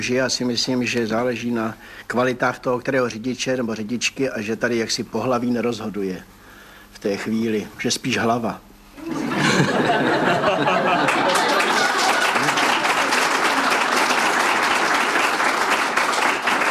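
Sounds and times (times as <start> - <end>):
speech: 0.0 - 6.4, 7.0 - 10.8
laughter: 9.0 - 12.8
sustained audience applause: 9.1 - 16.6.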